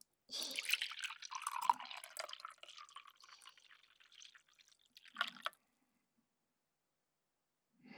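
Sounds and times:
drink being poured into a cup: 0.4s - 5.6s.

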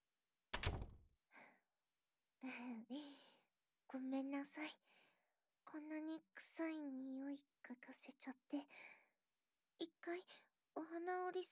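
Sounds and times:
room door swinging shut with a thud and rattle: 0.6s - 1.0s
speech: 2.4s - 3.3s, 3.9s - 5.0s, 5.7s - 9.0s, 9.8s - 11.5s.

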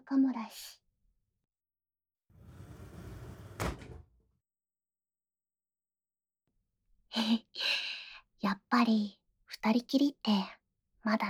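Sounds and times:
speech: 0.1s - 0.8s, 7.1s - 11.2s
sliding door rumbling shut with a sharp knock: 2.4s - 4.2s.

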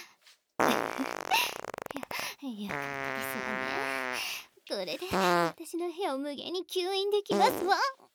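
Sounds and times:
loud sputtering farts: 0.6s - 2.1s, 2.7s - 4.2s, 5.1s - 5.6s, 7.3s - 7.8s
speech: 4.8s - 8.0s.

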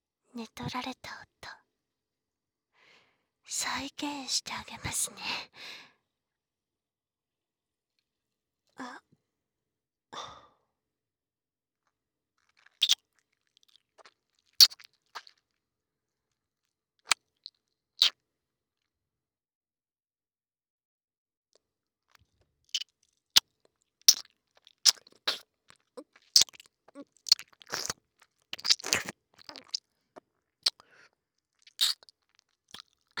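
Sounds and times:
speech: 0.4s - 1.6s, 3.5s - 5.9s, 8.8s - 9.1s
wet ear-licking mouth sounds from an ASMR recording: 12.6s - 13.0s, 13.6s - 15.4s, 17.1s - 18.2s, 24.1s - 29.9s, 30.6s - 30.8s, 31.6s - 33.1s.

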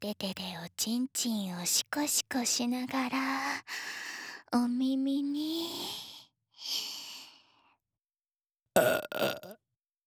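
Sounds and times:
speech: 0.0s - 6.9s, 8.8s - 9.6s
soft breathy inhales: 3.6s - 4.5s
loud voiced burp: 8.8s - 9.6s.

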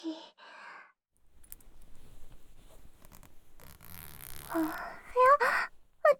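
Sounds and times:
soft fabric rustling: 1.2s - 6.1s
raspy zip of a trouser fly being pulled down: 1.3s - 5.8s.

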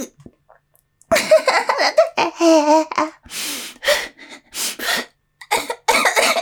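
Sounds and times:
laughter: 1.1s - 2.8s
person coughing during a breathing exercise: 1.1s - 3.1s, 5.4s - 6.4s.

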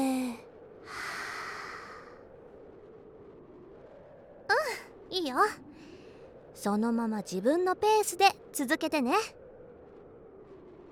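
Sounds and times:
slow breathing: 0.8s - 2.3s, 5.7s - 6.5s
speech: 5.2s - 5.7s, 6.6s - 9.4s.

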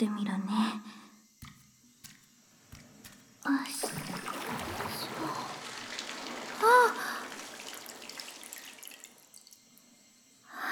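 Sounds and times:
bath water spilling over the edge of a tub as someone climbs in: 3.6s - 9.8s.

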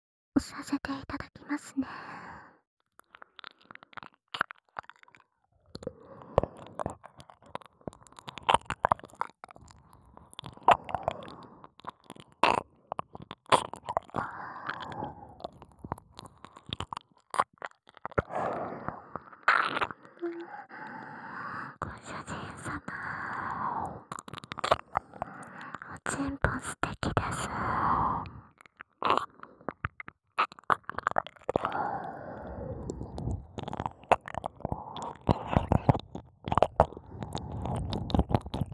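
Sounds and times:
speech: 0.4s - 2.3s
wet ASMR ear-licking mouth sounds: 3.0s - 27.8s, 28.6s - 38.7s.

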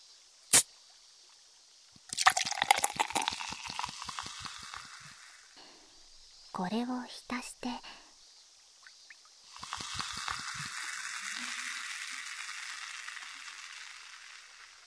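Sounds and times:
bottle cap being twisted open with a sharp hiss: 0.5s - 0.7s, 2.1s - 6.4s, 9.5s - 14.8s
carbonated water fizzing on a cotton swab: 1.8s - 8.1s, 8.8s - 14.8s
sparkling water poured with rhythmic glugging: 2.0s - 8.0s, 9.2s - 14.8s
speech: 6.6s - 8.0s.

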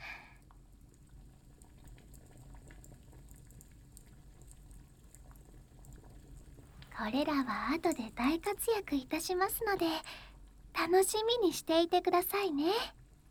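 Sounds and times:
water boiling in an iron kettle over burning charcoal: 0.0s - 13.3s
soft crackles of burning charcoal: 6.8s - 12.9s
speech: 7.0s - 13.0s.

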